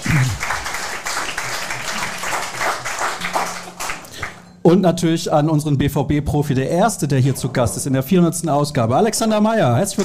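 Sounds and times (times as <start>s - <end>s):
crowd applauding: 0.0s - 4.5s
speech: 4.7s - 10.0s.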